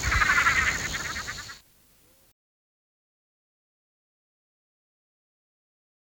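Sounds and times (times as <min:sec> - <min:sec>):
Roth's tree frog Litoria rothii rattling call: 0:00.0 - 0:02.2.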